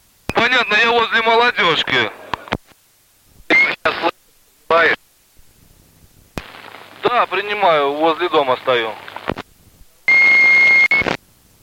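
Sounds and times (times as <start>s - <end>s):
loud steady electronic beep from a two-way radio: 0.3s - 1.9s, 3.5s - 4.1s, 10.1s - 11.2s
radio static: 0.3s - 2.8s, 3.4s - 5.0s, 6.4s - 9.5s, 10.1s - 11.2s
speech: 0.5s - 2.2s, 7.4s - 9.0s.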